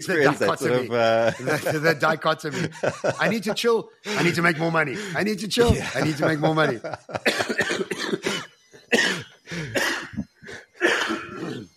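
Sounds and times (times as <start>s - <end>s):
laughter: 0.0s - 7.8s
speech: 0.0s - 9.2s
harsh coughing: 5.7s - 11.7s
throat clearing: 7.3s - 11.7s.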